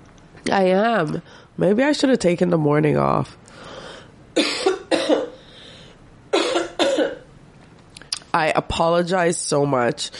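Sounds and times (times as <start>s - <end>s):
speech: 0.4s - 3.7s, 8.4s - 10.1s
person coughing in a coughing fit: 4.4s - 5.4s, 6.3s - 7.3s.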